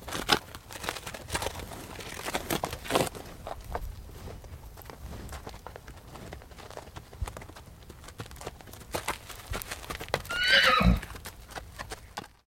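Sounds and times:
horses shuffling and stepping on dirt: 0:00.0 - 0:12.4
horse whinny: 0:10.3 - 0:11.1.

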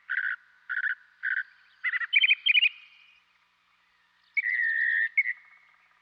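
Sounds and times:
northern mockingbird song: 0:00.1 - 0:03.0, 0:04.3 - 0:06.0.

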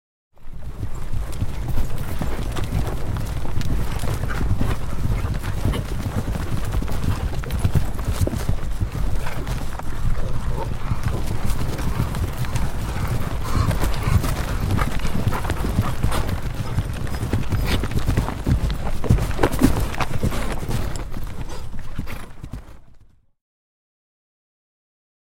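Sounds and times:
herd of horses cantering by: 0:00.4 - 0:23.2.

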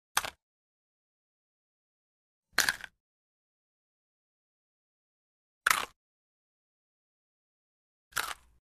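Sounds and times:
crunch: 0:02.6 - 0:03.0, 0:05.6 - 0:06.0, 0:08.1 - 0:08.6
small sharp fast bone break: 0:05.7 - 0:06.0, 0:08.1 - 0:08.6.

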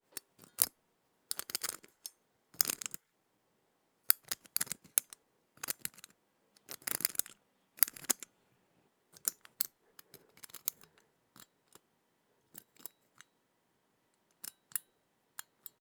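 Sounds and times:
lock tumbler rotating with clicky mechanical movement: 0:01.3 - 0:03.0, 0:04.1 - 0:08.3, 0:09.2 - 0:11.8.

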